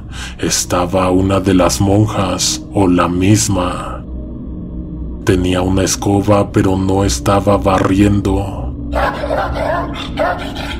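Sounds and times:
steady low hum: 0:00.0 - 0:10.7
speech: 0:00.4 - 0:04.0, 0:05.3 - 0:10.7
dog barking excitedly: 0:09.0 - 0:10.7.

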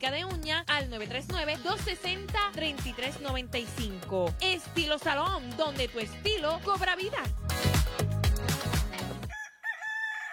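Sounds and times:
speech: 0:00.0 - 0:07.6
rhythmic music with a thumping beat: 0:00.0 - 0:09.3
rooster crowing: 0:09.3 - 0:10.3.

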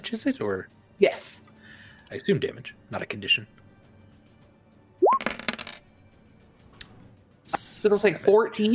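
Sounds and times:
speech: 0:00.0 - 0:01.5, 0:02.1 - 0:03.6, 0:07.5 - 0:08.7
dice clattering across a hard tabletop: 0:05.1 - 0:05.9.

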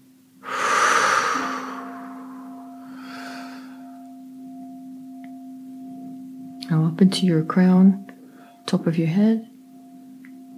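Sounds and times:
deep airy breath in and out: 0:00.4 - 0:04.0, 0:08.2 - 0:08.6
speech: 0:06.7 - 0:08.0, 0:08.7 - 0:09.5.

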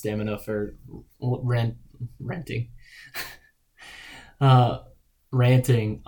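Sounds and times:
speech: 0:00.0 - 0:06.0
heavy breathing after running out of breath: 0:02.8 - 0:04.4
person gasping: 0:02.8 - 0:04.4.

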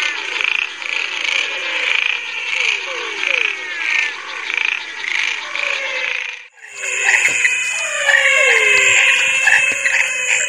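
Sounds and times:
chorus of many frog species croaking and trilling in the Chaco: 0:00.1 - 0:10.4
whistling and trilling frog calls: 0:06.6 - 0:10.4.

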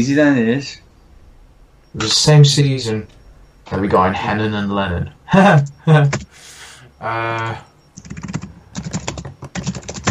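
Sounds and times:
speech: 0:00.0 - 0:00.8, 0:02.0 - 0:08.3
forceful typing on a computer keyboard: 0:06.0 - 0:06.3, 0:07.3 - 0:10.0.

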